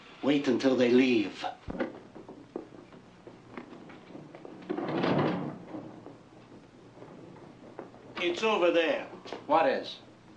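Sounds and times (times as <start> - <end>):
speech: 0.2 - 1.9, 8.3 - 10.0
door scraping as it swings open: 4.1 - 8.2.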